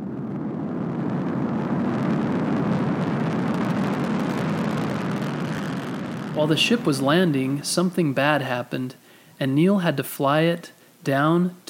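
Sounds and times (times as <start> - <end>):
rocket engines roaring at liftoff: 0.0 - 9.0
speech: 6.4 - 11.6.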